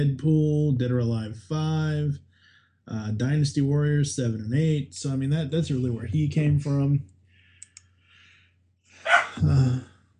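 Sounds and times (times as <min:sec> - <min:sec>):
speech: 0:00.0 - 0:02.3, 0:02.9 - 0:07.1, 0:09.0 - 0:09.9
faint clicks: 0:07.0 - 0:08.0
dog barking at a cat: 0:09.0 - 0:09.4.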